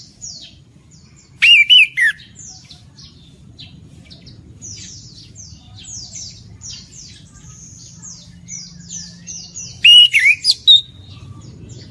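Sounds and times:
Orange-headed thrush singing loud whistled phrases: 1.4 - 2.3, 9.8 - 11.0.

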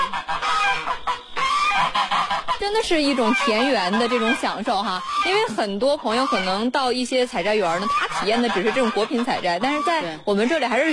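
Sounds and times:
large white geese honking at a farm greenhouse area: 0.0 - 10.9
speech: 2.7 - 10.9.

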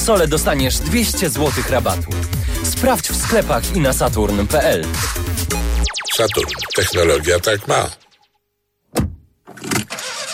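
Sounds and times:
speech: 0.0 - 8.0
diesel car engine struggling to start: 9.6 - 10.3.

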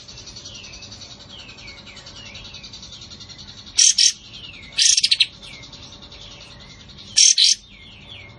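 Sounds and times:
Cream-vented Bulbul harsh chattering bursts: 3.8 - 4.2, 7.2 - 7.6.

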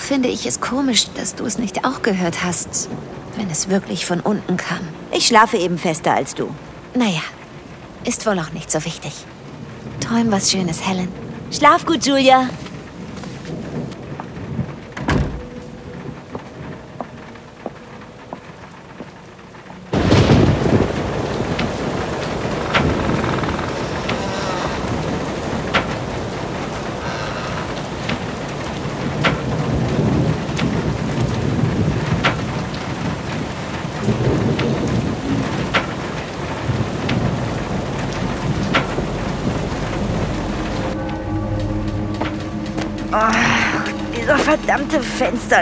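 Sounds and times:
rain falling in a thunderstorm: 0.0 - 45.5
speech: 0.1 - 7.4, 8.0 - 12.7, 45.2 - 45.5
thunder crack and rumbles: 12.5 - 17.5, 19.9 - 45.3.

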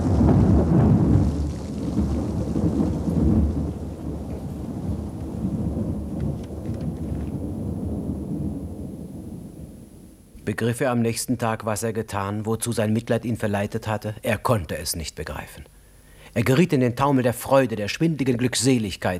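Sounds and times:
rain falling on a stormy night: 0.0 - 10.3
thunder crash after lightning on a stormy night: 0.0 - 10.3
speech: 10.5 - 15.8, 16.4 - 19.1.

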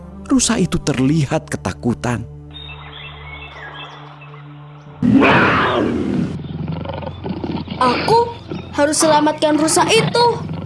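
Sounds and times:
speech: 0.3 - 2.3, 7.8 - 10.5
angry tiger roaring on a grassland: 5.0 - 10.6.

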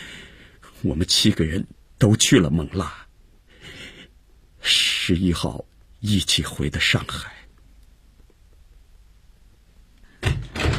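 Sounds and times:
speech: 0.8 - 3.0, 4.6 - 7.4
door banging open and shut: 10.2 - 10.7.

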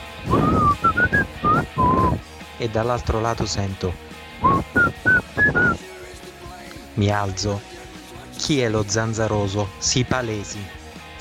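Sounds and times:
person whistling a melodic phrase in an open-plan office: 0.3 - 2.2, 4.4 - 5.8
speech: 2.6 - 4.7, 7.0 - 7.8, 8.5 - 11.1.

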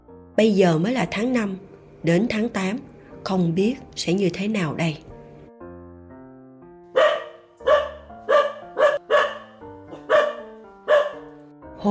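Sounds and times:
sustained low musical background: 0.0 - 11.8
speech: 0.4 - 5.1
dog barking at something in the woods: 6.9 - 11.4.

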